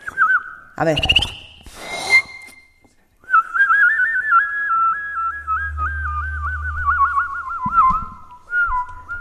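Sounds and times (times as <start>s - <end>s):
person whistling imitation of a goldfinch song: 0.0s - 2.5s, 3.2s - 9.1s
speech: 0.8s - 1.4s
low hum: 4.4s - 9.1s.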